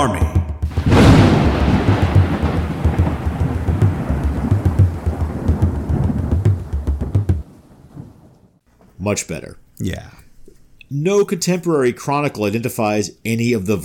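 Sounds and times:
loud clap of thunder rolling as a deep rumbling roar: 0:00.6 - 0:08.6
speech: 0:09.1 - 0:10.2, 0:10.9 - 0:13.8.

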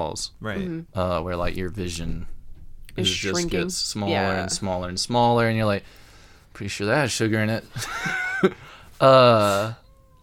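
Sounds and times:
speech: 0:00.0 - 0:02.4, 0:03.0 - 0:09.8
cat meowing at a locked door: 0:09.4 - 0:10.2.

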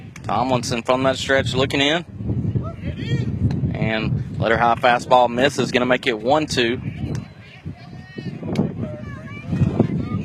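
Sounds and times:
gusty wind buffeting the microphone: 0:00.0 - 0:10.2
speech: 0:00.3 - 0:02.3, 0:03.0 - 0:06.9
voices: 0:00.3 - 0:10.2.

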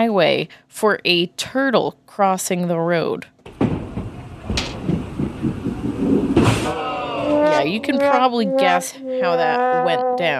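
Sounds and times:
speech: 0:00.0 - 0:03.6, 0:07.6 - 0:10.3
car crash sound effect with heavy crunching impacts: 0:03.5 - 0:07.5
rumbling vehicle roar: 0:04.4 - 0:10.3.

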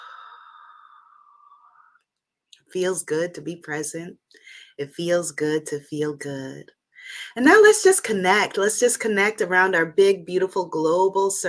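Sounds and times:
deep exhale during a guided breathing exercise: 0:00.0 - 0:01.9
speech: 0:02.7 - 0:11.4.

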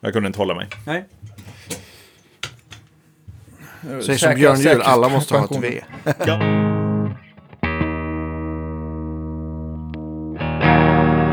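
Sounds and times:
speech: 0:00.0 - 0:01.8, 0:03.8 - 0:06.8
laughter: 0:03.4 - 0:06.5
electric guitar with P19 pickups played through an effects unit: 0:06.3 - 0:11.3.

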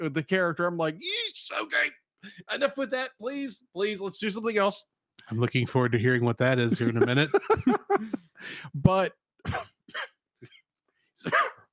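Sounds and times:
speech: 0:00.0 - 0:10.1, 0:11.2 - 0:11.6
laughter: 0:06.5 - 0:08.4
dry coughs: 0:09.4 - 0:10.6, 0:11.2 - 0:11.7.

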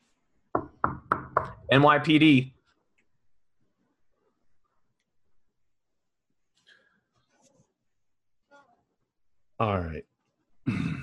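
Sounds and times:
firm knocks on a door by police detectives: 0:00.5 - 0:01.6
speech: 0:01.7 - 0:02.6.

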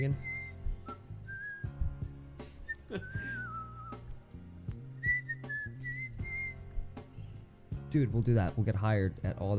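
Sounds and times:
speech: 0:00.0 - 0:00.3, 0:02.9 - 0:03.5, 0:07.9 - 0:09.5
person whistling a simple tune: 0:00.0 - 0:04.2, 0:05.0 - 0:07.0
steady rhythmic backing music: 0:00.0 - 0:09.5.

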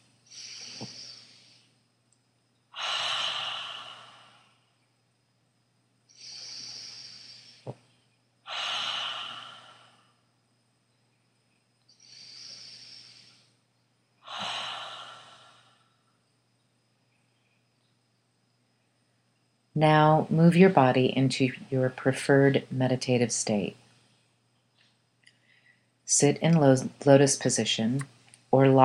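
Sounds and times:
ujjayi breathing during a seated yoga meditation: 0:00.0 - 0:01.8, 0:02.7 - 0:04.8, 0:06.1 - 0:10.3, 0:11.9 - 0:16.1
low steady hum: 0:00.0 - 0:28.8
speech: 0:19.8 - 0:23.8, 0:26.1 - 0:28.8.

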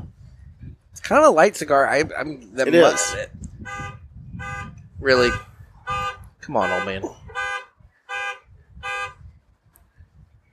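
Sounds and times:
steady wind rumble: 0:00.0 - 0:10.5
speech: 0:01.0 - 0:03.4, 0:05.0 - 0:07.2
car alarm honking in brassy horn blasts: 0:02.7 - 0:09.2.

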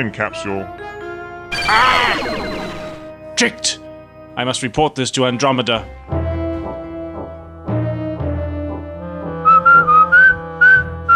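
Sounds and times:
speech: 0:00.0 - 0:01.0, 0:01.7 - 0:02.8, 0:03.4 - 0:06.1
person whistling a short bright tune: 0:09.5 - 0:11.1.

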